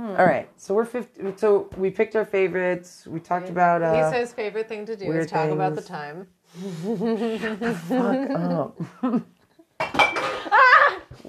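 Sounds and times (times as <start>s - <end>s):
speech: 0.2s - 9.4s
glass bottle knocked over and clattering: 9.8s - 10.4s.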